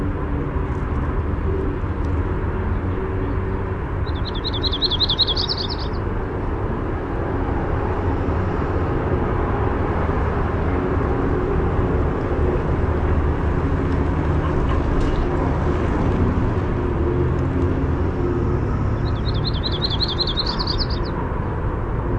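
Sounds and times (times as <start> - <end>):
constant traffic rumble: 0.0 - 22.1
yellow-rumped warbler singing a high jumbled trill: 4.1 - 6.0, 19.0 - 21.1.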